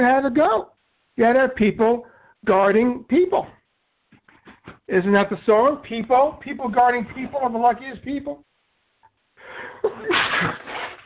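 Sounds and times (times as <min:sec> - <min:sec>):
speech: 0:00.0 - 0:03.6, 0:04.9 - 0:08.5, 0:09.5 - 0:10.8
person sneezing: 0:09.9 - 0:11.0.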